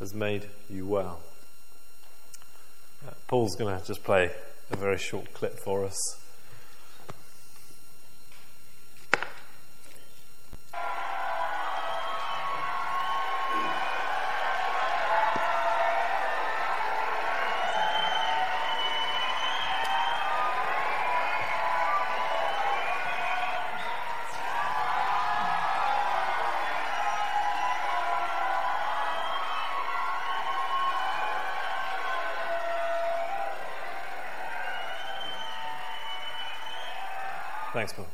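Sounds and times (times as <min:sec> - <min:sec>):
speech: 0:00.0 - 0:01.4, 0:03.0 - 0:06.2
excited whoops from the crowd: 0:10.7 - 0:37.8
large crowd shouting and cheering: 0:10.7 - 0:38.1.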